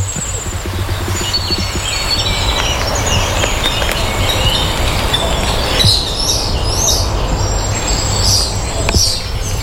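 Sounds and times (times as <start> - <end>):
steady low rumble: 0.0 - 5.4
cuckoo calling: 0.0 - 6.2
chorus of chirping songbirds: 0.0 - 9.6.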